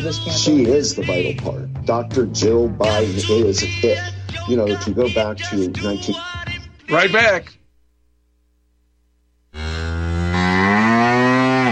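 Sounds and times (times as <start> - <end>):
speech: 0.0 - 7.6
cow mooing: 9.6 - 11.6.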